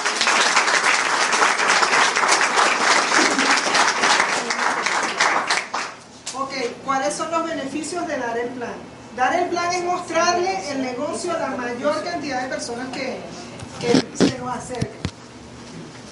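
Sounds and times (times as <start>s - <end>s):
loud dense crowd applause: 0.0s - 6.0s
speech: 7.1s - 15.0s.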